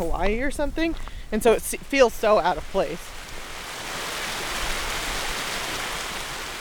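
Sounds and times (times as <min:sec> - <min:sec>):
speech: 0:00.0 - 0:03.2
waterfall rush of falling water: 0:01.4 - 0:06.5.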